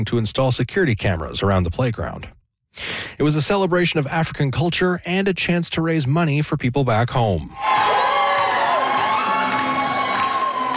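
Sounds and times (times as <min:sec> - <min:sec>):
speech: 0:00.0 - 0:08.1
crowd cheering at an African culture festival fashion runway: 0:07.5 - 0:10.7
high-pitched whoops and shouts: 0:07.5 - 0:10.7.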